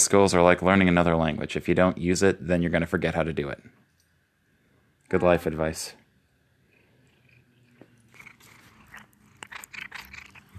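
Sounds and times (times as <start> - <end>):
speech: 0.1 - 3.8, 5.1 - 6.0
dog chewing on a person: 7.4 - 10.5.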